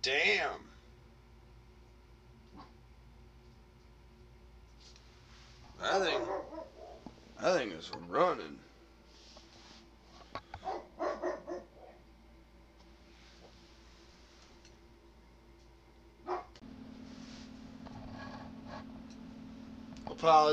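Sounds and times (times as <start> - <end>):
speech: 0.0 - 0.7, 5.8 - 6.7, 7.4 - 8.6, 20.2 - 20.5
low steady hum: 0.0 - 20.5
dog barking at passerby: 6.0 - 7.1, 10.6 - 12.0, 16.2 - 16.6.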